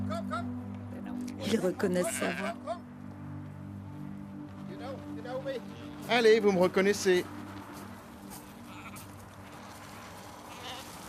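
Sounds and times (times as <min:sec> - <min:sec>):
speech: 0:01.4 - 0:02.8, 0:05.4 - 0:07.4
several sheep bleating: 0:02.0 - 0:02.8, 0:08.6 - 0:09.2, 0:10.5 - 0:11.0.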